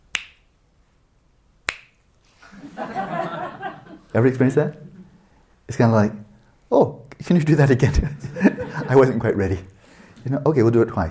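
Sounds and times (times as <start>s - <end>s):
finger snaps: 0.0s - 0.5s, 1.6s - 2.0s
laughter: 2.4s - 5.2s, 7.8s - 9.5s
speech: 4.1s - 4.9s, 5.7s - 11.0s.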